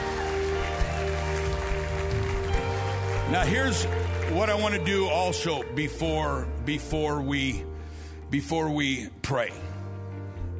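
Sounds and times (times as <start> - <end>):
church audience clapping a clap offering: 0.0 - 6.4
sustained organ-like musical tone droning: 0.0 - 7.8
speech: 3.3 - 7.7, 8.3 - 9.7.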